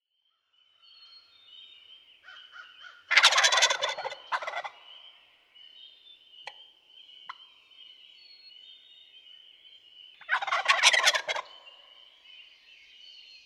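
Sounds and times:
birds chirping: 0.9 - 13.4
wild turkey gobbling: 3.1 - 4.8, 10.3 - 11.6.

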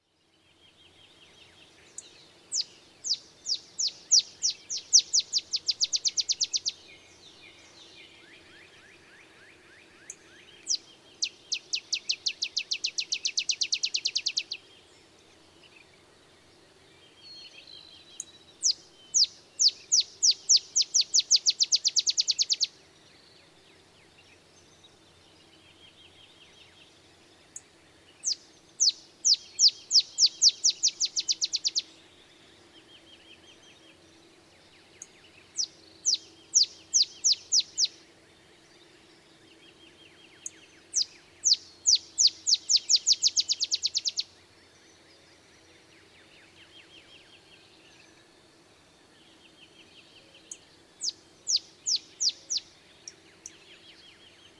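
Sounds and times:
Olive Sparrow calling: 1.6 - 9.2, 10.0 - 14.6, 18.1 - 22.8, 28.2 - 32.0, 34.9 - 38.1, 40.0 - 44.4, 50.4 - 54.5.

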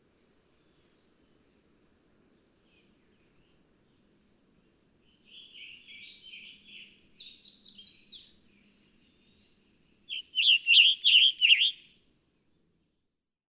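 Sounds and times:
Scarlet tanager singing: 5.1 - 11.9.

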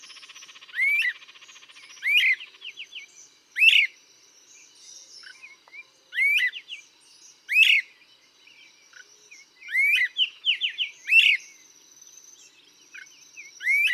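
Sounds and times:
birds twittering: 0.0 - 13.9.

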